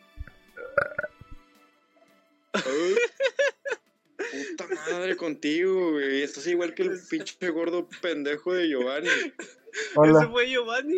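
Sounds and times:
burp into the microphone: 0.6 - 1.3
laughter: 2.6 - 5.3, 6.5 - 10.0
speech: 5.0 - 10.9.

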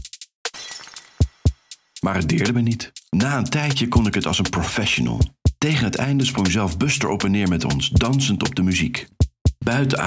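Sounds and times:
glass shattering: 0.5 - 1.6
speech: 2.0 - 10.0.

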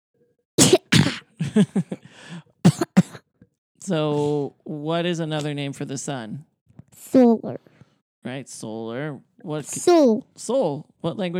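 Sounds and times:
person coughing: 0.6 - 1.3, 2.7 - 3.2
speech: 1.6 - 2.8, 3.9 - 11.3.

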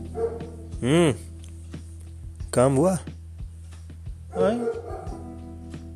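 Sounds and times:
neighbour's dog barking: 0.1 - 0.7, 4.3 - 5.3
speech: 0.8 - 1.3, 2.5 - 3.1, 4.4 - 4.7.

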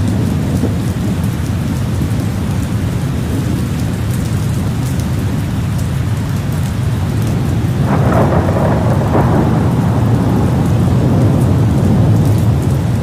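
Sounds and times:
steady heavy rain with a low rumble: 0.0 - 13.0.

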